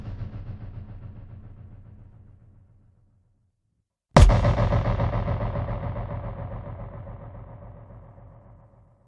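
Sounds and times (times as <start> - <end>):
cinematic drum hits: 4.2 - 8.6.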